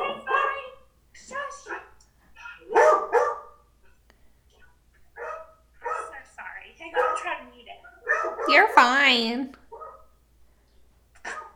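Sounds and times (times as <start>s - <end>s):
dog barking: 0.0s - 3.7s, 5.2s - 8.6s, 9.7s - 10.1s, 11.2s - 11.5s
speech: 8.6s - 9.6s.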